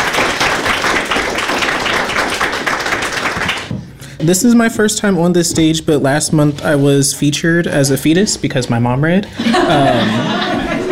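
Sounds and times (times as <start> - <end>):
crowd clapping: 0.0 - 3.9
speech: 4.2 - 10.6
laughter: 9.3 - 10.8.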